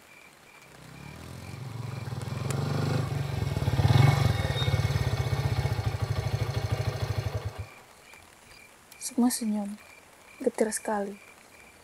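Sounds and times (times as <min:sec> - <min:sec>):
rattly underbone moped engine puttering and idling: 0:00.7 - 0:07.7
speech: 0:09.2 - 0:09.9, 0:10.6 - 0:11.3.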